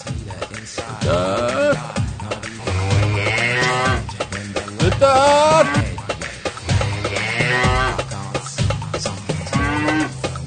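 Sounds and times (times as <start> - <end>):
speech: 0.8 - 1.9
cow mooing: 2.6 - 4.1, 5.0 - 5.9, 6.6 - 8.1, 9.5 - 10.2.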